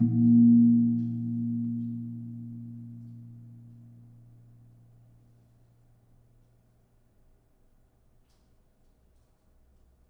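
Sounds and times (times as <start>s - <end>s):
gamelan kempul gong: 0.0s - 4.4s.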